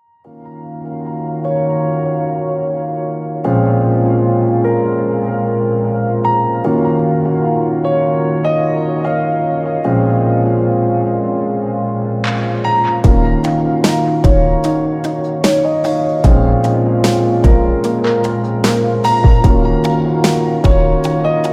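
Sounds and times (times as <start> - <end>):
chill out piano groove: 0.3 - 21.5.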